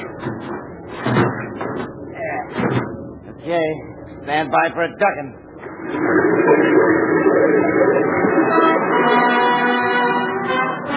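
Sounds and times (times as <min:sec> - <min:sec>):
heavy metal watertight door hauled open with grinding and clanking: 0:00.0 - 0:03.4
dense rumbling background: 0:00.0 - 0:10.6
speech: 0:03.5 - 0:09.8.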